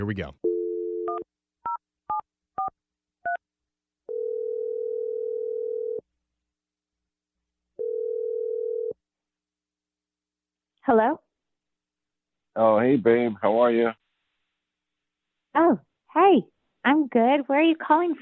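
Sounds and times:
speech: 0.0 - 0.4, 10.9 - 11.2, 12.6 - 14.0, 15.6 - 18.2
phone ringing tones: 0.4 - 1.2, 4.1 - 6.0, 7.8 - 9.0.

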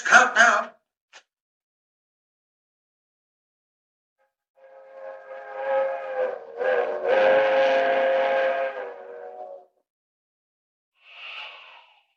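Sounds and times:
fast-moving train whistle blast: 4.6 - 9.8.

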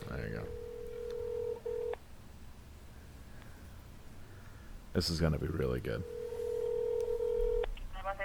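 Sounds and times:
telephone dial tone: 0.5 - 2.0, 6.0 - 7.7
speech: 5.0 - 6.2.

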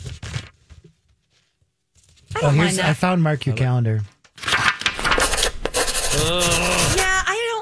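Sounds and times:
speech: 2.4 - 4.1, 6.2 - 6.8
book pages turning: 4.4 - 7.3.

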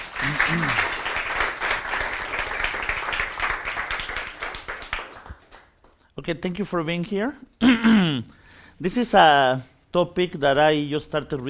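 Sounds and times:
audience applause for a speaker: 0.0 - 5.8
speech: 0.5 - 0.9, 6.3 - 11.4.

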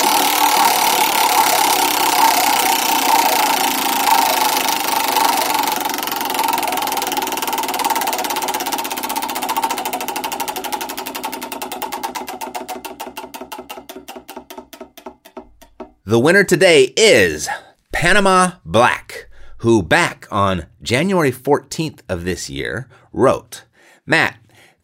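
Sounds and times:
prize wheel spinning and clicking: 0.0 - 16.1
speech: 16.1 - 19.0, 19.6 - 24.4.

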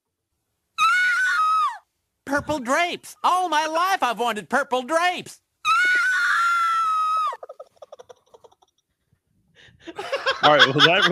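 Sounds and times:
woman screaming in a movie clip: 0.8 - 1.9, 5.6 - 7.4
speech: 2.4 - 5.4, 9.9 - 11.1
laughter: 9.9 - 11.1.

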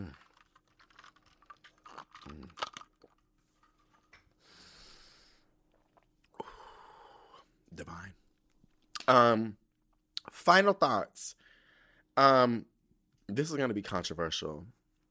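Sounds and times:
slurping iced homemade mint lemonade: 0.0 - 3.2
ice cubes clinking in a glass of homemade mint lemonade: 0.1 - 3.2
speech: 9.1 - 9.6, 10.4 - 11.4, 12.2 - 12.7, 13.3 - 14.8.

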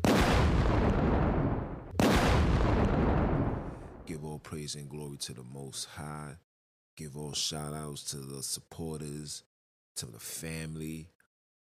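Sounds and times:
gunshot salute sound effect booming blasts: 0.0 - 4.0
speech: 4.3 - 11.2.

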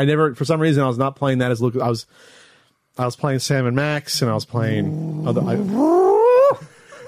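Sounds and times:
speech: 0.0 - 2.4, 3.0 - 6.0
cat-like yowl rising in pitch: 4.8 - 6.6.

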